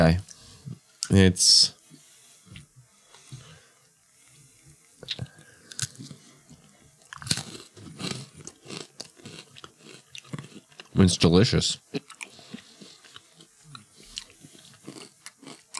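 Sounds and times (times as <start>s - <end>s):
speech: 0.0s - 0.3s, 1.1s - 1.8s, 11.0s - 12.0s
person biting into food and chewing: 4.8s - 11.0s, 11.9s - 15.7s.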